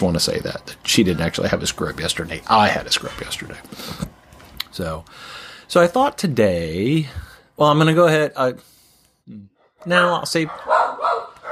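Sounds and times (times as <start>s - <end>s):
speech: 0.0s - 8.7s, 9.3s - 11.2s
dogs barking in a house: 9.6s - 11.5s.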